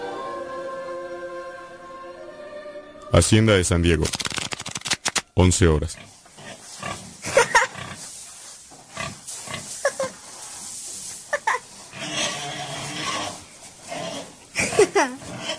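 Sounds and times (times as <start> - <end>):
speech: 3.1 - 4.3, 5.4 - 6.1
pigs grunting in a pen: 5.8 - 8.1, 8.8 - 10.3, 11.4 - 15.5
rustling in a pig pen: 5.9 - 15.5
pigs squealing in a pen: 6.0 - 8.1, 11.3 - 15.5.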